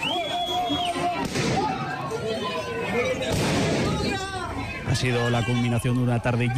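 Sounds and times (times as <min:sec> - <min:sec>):
shrill whistles: 0:00.0 - 0:01.2
dense noisy crowd of protesters: 0:00.0 - 0:06.5
gunshots fired into the air by police: 0:03.3 - 0:03.9
speech: 0:05.0 - 0:06.5.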